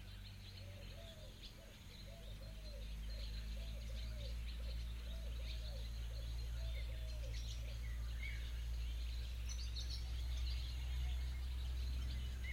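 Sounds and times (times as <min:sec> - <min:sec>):
bright bird chirps in the Danube delta: 0:00.0 - 0:12.5
low steady rumble: 0:00.0 - 0:12.5
bird cooing or trilling phrase in the Danube delta: 0:00.6 - 0:08.4.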